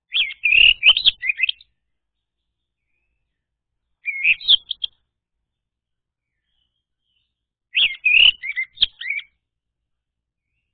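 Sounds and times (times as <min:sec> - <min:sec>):
orange-headed thrush whistled and chirping song: 0:00.0 - 0:05.1, 0:06.2 - 0:09.4, 0:10.4 - 0:10.7.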